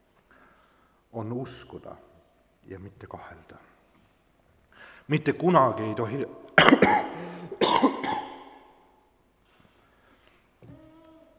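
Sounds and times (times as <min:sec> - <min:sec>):
speech: 0:01.2 - 0:03.7, 0:05.1 - 0:07.6
person coughing from a scratchy irritated throat: 0:06.6 - 0:08.7.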